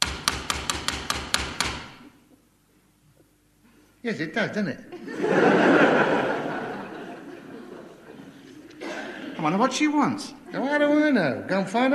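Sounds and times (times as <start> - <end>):
sharp knocking on a door: 0.0 - 2.0
speech: 4.0 - 5.5, 9.4 - 11.9
laughter: 4.9 - 9.6.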